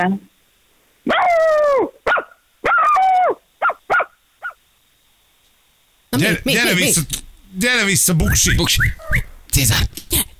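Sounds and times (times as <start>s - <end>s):
speech: 0.0s - 0.3s, 6.2s - 10.0s
person imitating a dog barking and howling: 1.1s - 3.8s.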